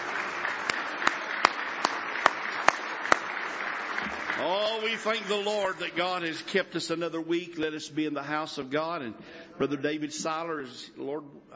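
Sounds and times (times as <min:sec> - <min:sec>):
audience clapping hands in praise: 0:00.0 - 0:06.4
sharp steady rhythmic claps: 0:00.0 - 0:06.6
speech: 0:04.4 - 0:11.5.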